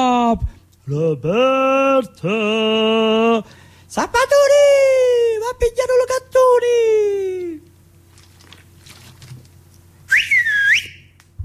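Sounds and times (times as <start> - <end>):
speech: 0.0 - 4.9
quiet hum: 0.0 - 11.4
father whistling loudly to call his child: 10.1 - 11.2.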